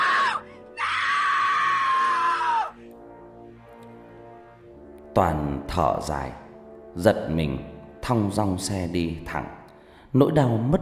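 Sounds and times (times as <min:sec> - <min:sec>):
woman screaming in anguish: 0:00.0 - 0:02.8
speech: 0:05.2 - 0:10.8.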